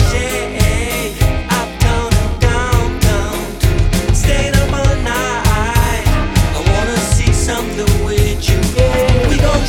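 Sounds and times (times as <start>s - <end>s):
alt rock music: 0.0s - 9.6s.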